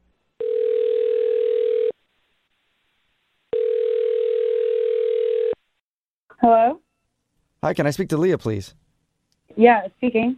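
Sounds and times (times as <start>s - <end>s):
long steady phone line tones: 0.4s - 1.9s, 3.5s - 5.6s
speech: 7.6s - 8.8s, 9.6s - 10.3s.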